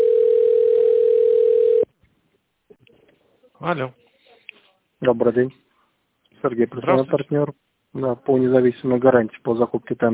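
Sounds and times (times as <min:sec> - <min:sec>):
telephone ringing tone while a call is connected: 0:00.0 - 0:01.9
speech: 0:03.6 - 0:04.0, 0:05.0 - 0:05.6, 0:06.4 - 0:10.1.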